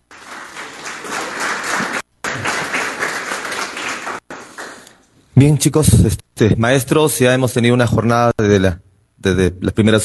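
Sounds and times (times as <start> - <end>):
crowd applause: 0.0 - 5.0
speech: 5.4 - 10.0.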